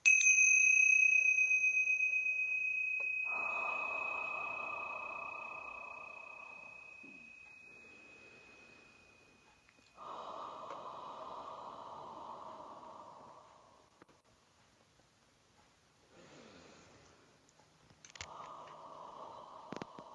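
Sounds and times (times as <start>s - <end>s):
tingsha bells ringing: 0.0s - 11.7s
soft breathy noise: 1.6s - 14.7s, 16.0s - 20.1s.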